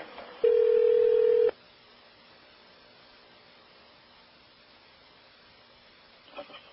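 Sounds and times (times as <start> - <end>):
electronic hotel room telephone ringing: 0.4 - 1.5.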